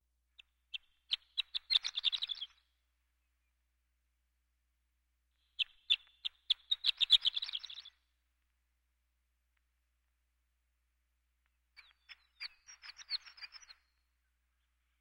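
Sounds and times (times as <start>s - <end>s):
horned lark song: 0.3s - 3.7s, 5.3s - 8.0s, 11.8s - 14.9s.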